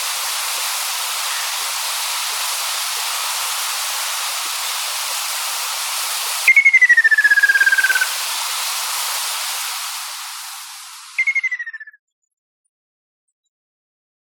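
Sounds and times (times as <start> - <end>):
steady hiss: 0.0 - 11.6
ruddy kingfisher descending trilled call: 6.5 - 8.1, 11.2 - 11.8.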